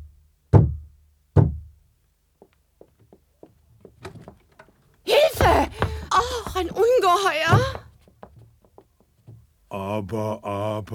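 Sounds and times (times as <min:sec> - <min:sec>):
heavy booming knocks on a small door: 0:00.5 - 0:01.8, 0:05.4 - 0:06.9, 0:07.5 - 0:08.4
faint taps and rustles: 0:02.4 - 0:09.6
speech: 0:06.6 - 0:07.8, 0:09.9 - 0:10.9.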